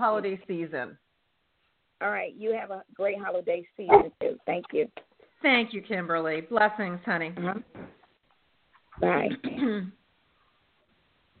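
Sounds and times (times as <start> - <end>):
speech: 0.0 - 1.1, 2.0 - 8.0, 9.0 - 10.0
faint murmuring: 2.6 - 5.0
dog barking: 3.9 - 4.1.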